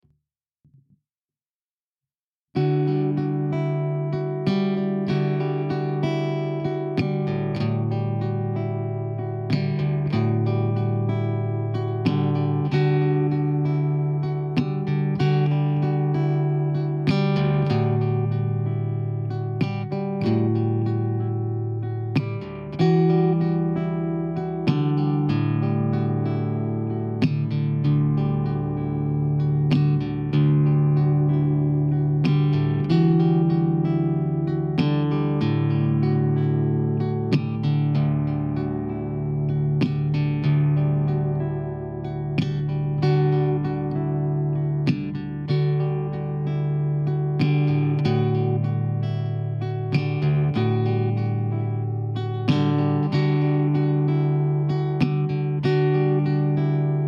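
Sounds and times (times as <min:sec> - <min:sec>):
mellow guitar arpeggios: 0:02.5 - 0:57.0.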